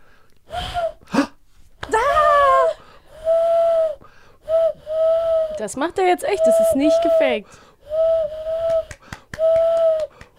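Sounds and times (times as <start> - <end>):
person imitating an owl with breathy vocal hoots: 1.9 - 5.7, 6.3 - 10.3
speech: 5.6 - 7.7.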